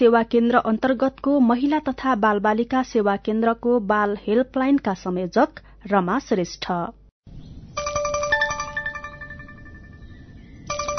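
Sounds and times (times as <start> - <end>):
speech: 0.0 - 7.4
mobile phone ringtone for an incoming call: 7.8 - 10.9.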